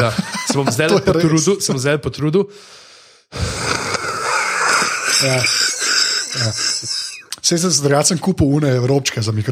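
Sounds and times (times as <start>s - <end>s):
laughter: 0.0s - 1.8s, 4.2s - 7.5s
speech: 0.0s - 3.6s, 5.2s - 5.7s, 6.3s - 9.5s
raspy wheezing breath from a person's lungs: 2.5s - 7.3s.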